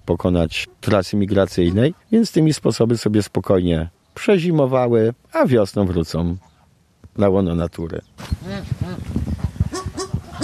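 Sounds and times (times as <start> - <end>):
speech: 0.1 - 6.5, 7.2 - 9.2
geese honking at a wildlife rescue centre: 8.4 - 10.4.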